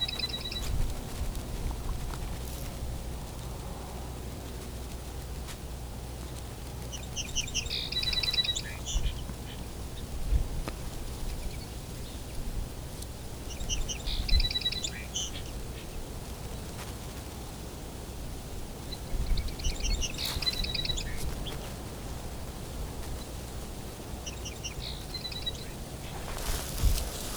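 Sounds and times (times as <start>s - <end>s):
two male song sparrows singing back and forth: 0.0s - 1.0s, 6.5s - 10.2s, 13.2s - 16.1s, 18.8s - 27.3s
steady outdoor hiss and low rumble: 0.0s - 27.3s.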